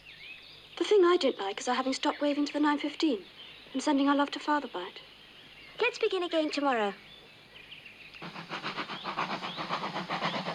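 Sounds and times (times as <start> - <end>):
speech: 0.8 - 5.1, 5.8 - 7.1
steam train chuffing through sunny countryside: 8.2 - 10.5.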